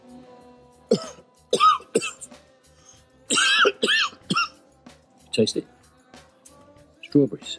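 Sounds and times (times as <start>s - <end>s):
person coughing harshly after smoking marijuana: 0.9s - 2.3s, 3.3s - 4.6s
speech: 5.4s - 5.7s, 7.1s - 7.5s.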